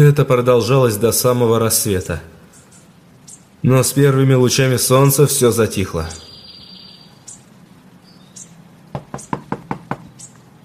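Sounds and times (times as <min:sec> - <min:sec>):
speech: 0:00.0 - 0:02.4, 0:03.6 - 0:06.3
faint chirps: 0:02.0 - 0:10.6
person knocking sharply on a front door: 0:08.9 - 0:10.1.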